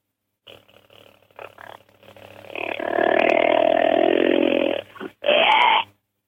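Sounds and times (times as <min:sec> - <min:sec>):
man imitating whitetail buck growl, roar and bark: 0:02.6 - 0:05.9.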